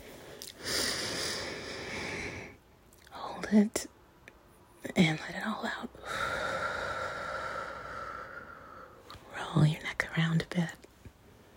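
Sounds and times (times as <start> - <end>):
deep breath in: 0.0 - 2.6, 6.0 - 9.0
speech: 3.5 - 3.9, 4.9 - 6.4, 9.5 - 10.8.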